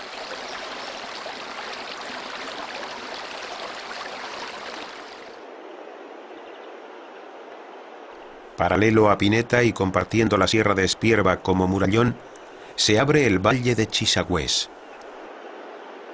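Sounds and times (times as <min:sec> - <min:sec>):
water rushing and splashing between rocks: 0:00.0 - 0:05.4
speech: 0:08.6 - 0:14.8.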